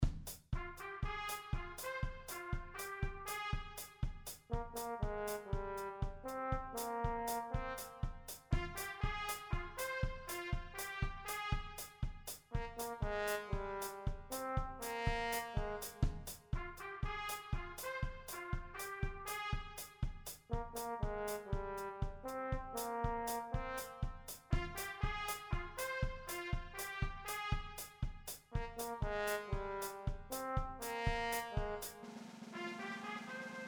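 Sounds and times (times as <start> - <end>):
trumpet: 0.0 - 33.6
trombone: 0.6 - 33.6.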